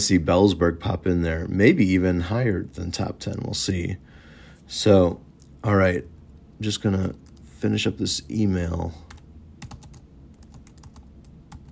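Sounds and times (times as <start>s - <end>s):
speech: 0.0s - 9.0s
low steady room hum: 0.0s - 11.7s
typing on a computer keyboard: 9.1s - 11.7s.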